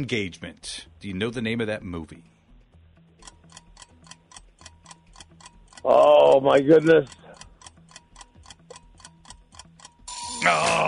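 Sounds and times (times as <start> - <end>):
speech: 0.0 - 2.3, 5.8 - 7.2, 10.4 - 10.8
quiz timer ticking: 2.7 - 10.8
loud harsh quiz buzzer: 10.1 - 10.8.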